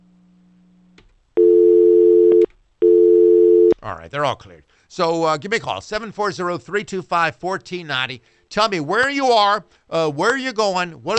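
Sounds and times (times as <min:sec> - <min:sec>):
telephone line tone: 0:01.4 - 0:03.8
speech: 0:03.8 - 0:11.1.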